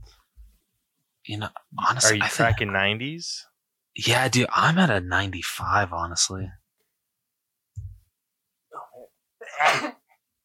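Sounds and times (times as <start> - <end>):
speech: 1.3 - 6.6, 9.5 - 10.0
person sneezing: 9.4 - 10.1.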